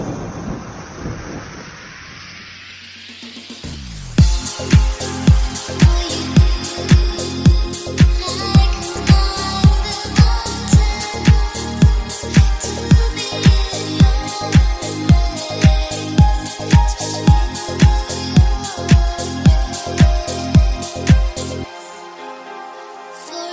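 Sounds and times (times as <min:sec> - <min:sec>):
rain: 0:00.0 - 0:23.5
trance beat ringtone: 0:03.3 - 0:21.6.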